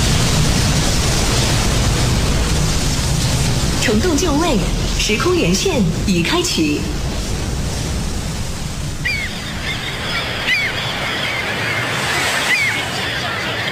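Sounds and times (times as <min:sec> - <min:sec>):
harbor waves washing at a naval harbor: 0:00.0 - 0:13.6
speech: 0:03.9 - 0:07.0
high bird calls: 0:09.0 - 0:13.6.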